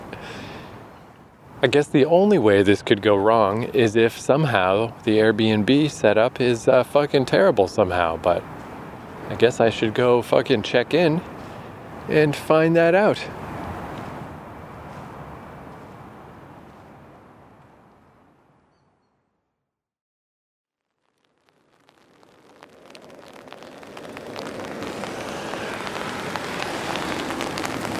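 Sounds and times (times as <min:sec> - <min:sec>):
speech: 0:01.6 - 0:08.6, 0:09.3 - 0:11.3, 0:12.0 - 0:13.4
rain falling: 0:21.1 - 0:27.9.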